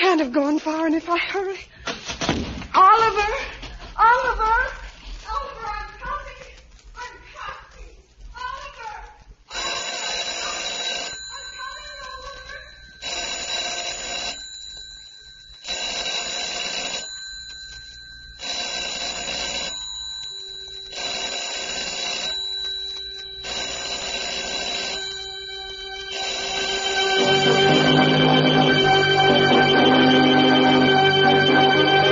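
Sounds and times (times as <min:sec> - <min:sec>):
speech: 0:00.1 - 0:04.8
telephone bell ringing: 0:09.5 - 0:32.0.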